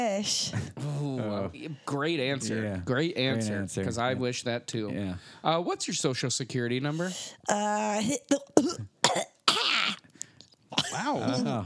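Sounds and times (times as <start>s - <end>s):
speech: 0.0s - 9.3s, 11.0s - 11.6s
person coughing: 8.4s - 10.0s, 10.8s - 11.6s.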